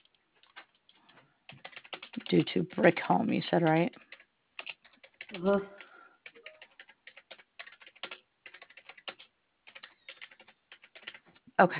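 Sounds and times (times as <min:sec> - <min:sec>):
typing on a computer keyboard: 0:00.0 - 0:02.9, 0:03.8 - 0:11.4
speech: 0:02.3 - 0:04.0, 0:05.3 - 0:05.8, 0:11.6 - 0:11.7.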